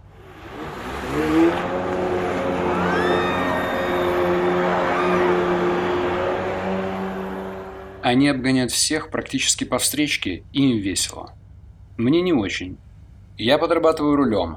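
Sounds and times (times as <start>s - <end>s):
jet ski engine revving: 0.0s - 8.4s
faint excited voices: 2.6s - 5.6s
speech: 8.1s - 11.4s, 12.0s - 12.8s, 13.4s - 14.5s.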